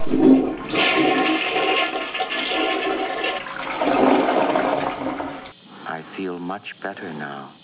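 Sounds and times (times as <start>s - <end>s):
toilet flushing: 0.0s - 5.6s.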